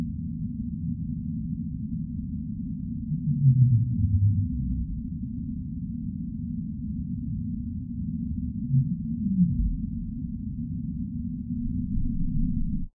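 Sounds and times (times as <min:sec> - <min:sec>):
constant deep rumble: 0:00.0 - 0:12.9
whale calls as faint short low moans: 0:02.9 - 0:05.4, 0:08.1 - 0:10.7, 0:11.4 - 0:12.9.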